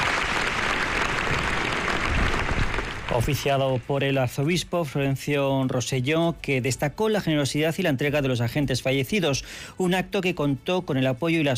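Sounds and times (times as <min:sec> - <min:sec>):
large crowd applauding at a funeral in a cathedral: 0:00.0 - 0:04.1
speech: 0:03.1 - 0:11.5.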